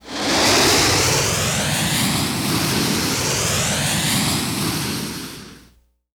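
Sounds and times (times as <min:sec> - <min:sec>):
rocket whoosh: 0:00.0 - 0:05.8.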